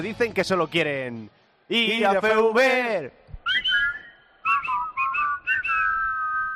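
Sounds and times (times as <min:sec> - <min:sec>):
speech: 0:00.0 - 0:03.3
two people whistling a melody together: 0:03.4 - 0:06.5.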